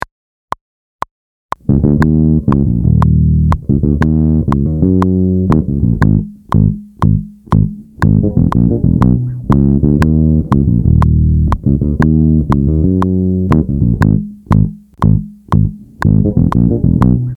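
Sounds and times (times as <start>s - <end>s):
click: 1.5s - 17.3s.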